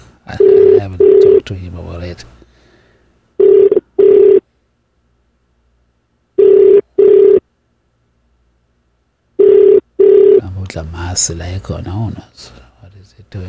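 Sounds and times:
telephone ringback on an outgoing call: 0.3 - 1.5, 3.4 - 4.5, 6.4 - 7.4, 9.4 - 10.4
speech: 0.3 - 2.4, 10.7 - 13.4.

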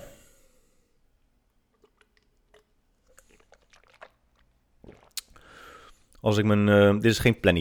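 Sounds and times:
person sipping and swallowing plain water: 1.6 - 6.2
slurp or splash: 1.7 - 6.2
speech: 6.2 - 7.6.

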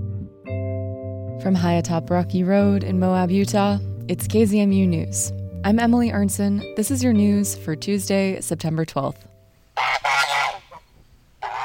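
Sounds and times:
speech: 1.4 - 9.3
geese honking at a park pond: 9.8 - 11.6.

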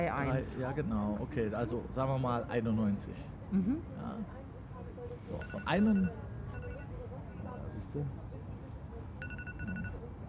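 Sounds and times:
speech: 0.0 - 4.4, 5.2 - 6.2, 7.9 - 8.2
phone alarm beeping: 5.4 - 6.9, 9.2 - 10.0.

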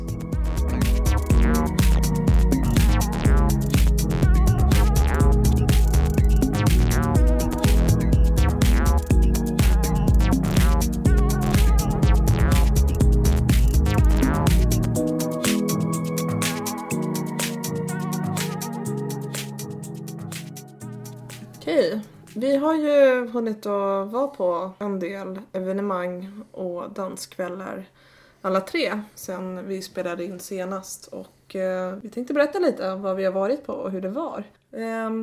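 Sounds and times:
acid electronic track with pulsing beat, squelchy bassline and ambient layers: 0.0 - 21.7
speech: 22.7 - 35.2.

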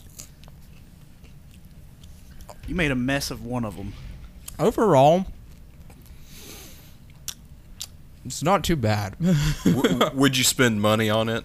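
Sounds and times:
crunchy chewing of a chicken sandwich with Cheetos and mayonnaise: 0.0 - 2.6
low steady rumble: 0.0 - 9.9
speech: 2.7 - 5.4, 8.3 - 11.4.

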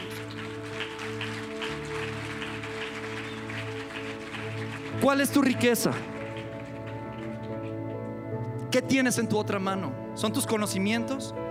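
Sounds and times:
crowd clapping: 0.0 - 7.8
sustained low musical drone: 0.0 - 10.3
speech: 5.0 - 6.1, 8.8 - 11.4.

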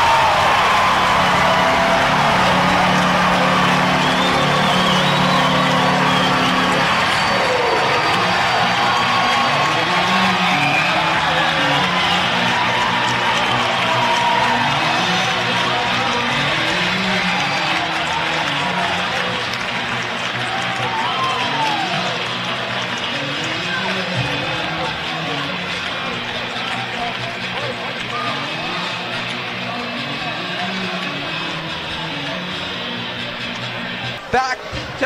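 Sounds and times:
whoops from an arena crowd: 0.0 - 16.0, 20.4 - 22.4
large indoor hockey arena crowd cheering and applauding: 0.0 - 35.0.

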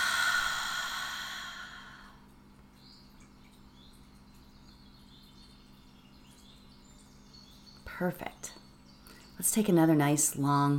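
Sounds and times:
deep exhale during a seated breathing exercise: 0.0 - 2.2
speech: 8.0 - 8.6, 9.4 - 10.7.

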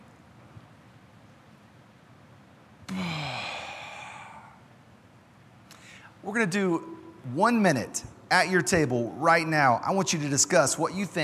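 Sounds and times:
quiet hiss: 0.0 - 11.2
group of people taking a big deep breath in: 2.9 - 4.6, 5.7 - 6.2
speech: 6.2 - 11.2.

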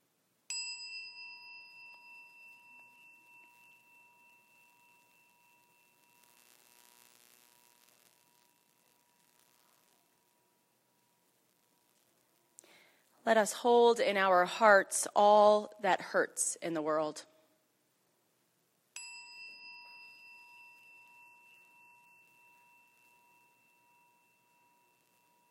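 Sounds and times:
quiet hiss: 0.0 - 25.5
bright metallic chime ringing: 0.5 - 10.0, 19.0 - 25.5
speech: 13.2 - 17.3.

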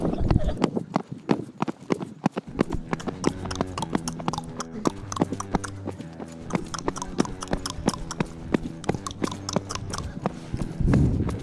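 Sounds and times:
horse hooves clip-clopping: 0.0 - 11.4
sustained musical tone: 2.5 - 10.8.

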